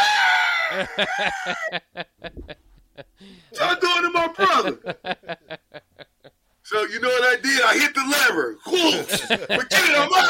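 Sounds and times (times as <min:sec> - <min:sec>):
voice imitating a person yelling in fright: 0:00.0 - 0:01.7
laughter: 0:00.7 - 0:06.4, 0:08.6 - 0:10.2
speech: 0:00.8 - 0:05.6, 0:06.7 - 0:10.2.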